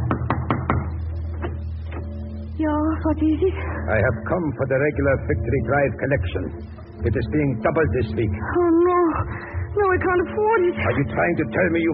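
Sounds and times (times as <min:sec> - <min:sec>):
knocking on the front door of a home: 0:00.0 - 0:00.9
speech: 0:02.6 - 0:11.9.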